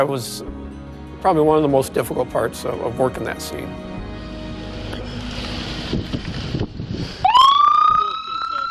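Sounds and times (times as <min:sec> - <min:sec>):
speech: 0:00.0 - 0:00.6, 0:01.2 - 0:03.9
ambulance siren wailing: 0:07.2 - 0:08.7.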